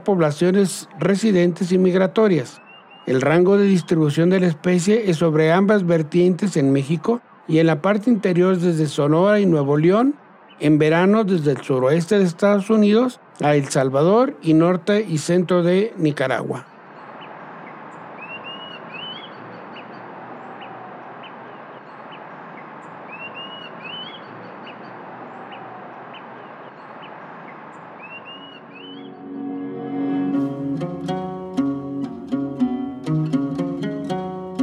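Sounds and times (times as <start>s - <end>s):
speech: 0.0s - 16.7s
short rising bird chirps: 2.5s - 4.2s, 16.7s - 25.0s, 26.1s - 29.4s
music: 28.7s - 34.6s.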